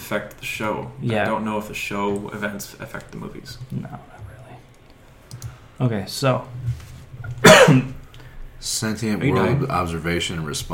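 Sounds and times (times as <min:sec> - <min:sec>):
speech: 0:00.1 - 0:04.2, 0:05.8 - 0:06.8, 0:07.7 - 0:08.0, 0:08.6 - 0:10.7
sharp dry tickly cough: 0:07.4 - 0:08.0.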